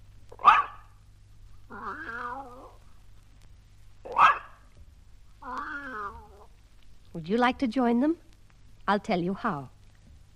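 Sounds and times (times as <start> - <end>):
dog giving a single sharp bark: 0.4 - 1.0, 4.1 - 4.6
cat giving a drawn-out wavering meow: 1.7 - 2.8, 5.4 - 6.5
speech: 7.2 - 8.2, 8.9 - 9.7.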